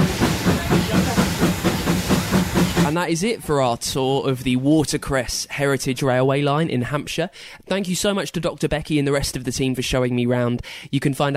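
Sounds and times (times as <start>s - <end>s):
heritage steam locomotive chuffing hauling over 200 tonnes up a steep gradient: 0.0s - 3.1s
speech: 2.9s - 11.3s.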